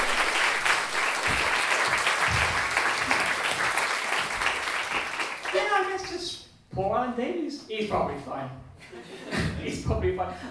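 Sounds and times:
audience applause: 0.0s - 6.2s
speech: 6.8s - 10.4s.

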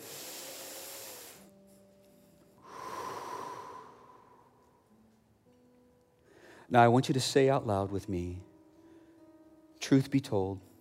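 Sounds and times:
deep breath: 0.0s - 1.5s, 2.1s - 4.8s, 6.2s - 6.7s
speech: 6.7s - 8.5s, 9.9s - 10.7s.

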